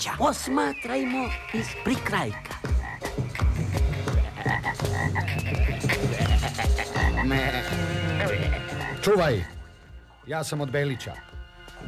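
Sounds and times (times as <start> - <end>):
speech: 0.0 - 2.6, 4.8 - 9.6, 10.3 - 11.8
dense chorus of frogs croaking: 0.5 - 10.2.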